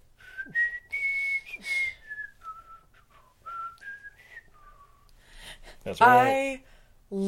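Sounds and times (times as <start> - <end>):
faint hum: 0.0 - 7.2
man whistling a short melodic theme tune while walking: 0.2 - 5.1
speech: 5.8 - 7.2.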